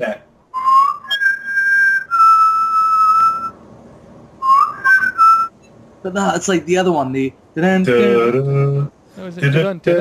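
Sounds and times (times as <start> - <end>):
speech: 0.0 - 0.2, 6.0 - 9.9
person whistling an opening theme tune: 0.6 - 3.5, 4.4 - 5.5.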